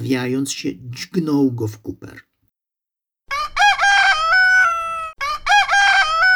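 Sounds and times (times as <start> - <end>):
speech: 0.0 - 2.3
rooster crowing loudly and shrilly: 3.3 - 6.3.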